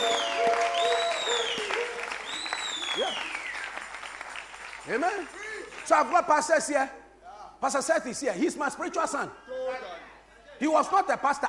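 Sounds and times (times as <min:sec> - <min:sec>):
high voices cheering and whooping: 0:00.0 - 0:03.4
audience clapping hands: 0:00.0 - 0:05.9
speech: 0:04.9 - 0:07.0, 0:07.6 - 0:09.8, 0:10.6 - 0:11.4.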